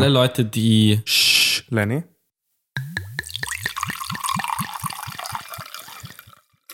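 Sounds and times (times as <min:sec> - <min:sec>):
speech: 0:00.0 - 0:02.1
sparkling water glugging from a bottle into a glass: 0:02.8 - 0:06.6
faint fizz of sparkling water: 0:03.0 - 0:06.7.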